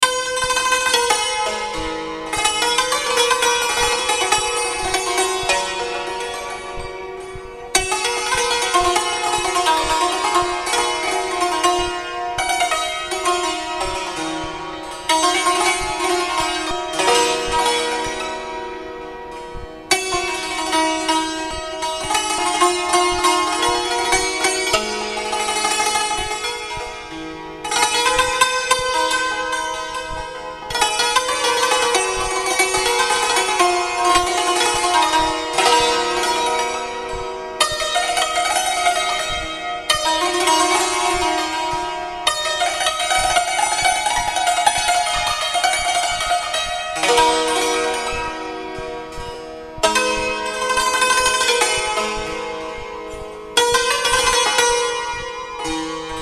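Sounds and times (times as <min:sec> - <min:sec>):
Iranian santur playing: 0:00.0 - 0:56.2.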